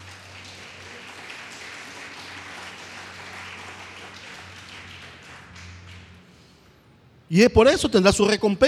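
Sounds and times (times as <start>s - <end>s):
large crowd applauding: 0.0s - 6.5s
speech: 7.3s - 8.6s.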